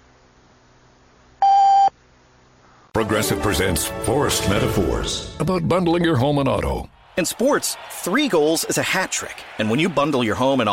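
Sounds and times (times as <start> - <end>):
radio station electronic time signal beep: 1.4 - 1.9
speech: 3.0 - 10.7.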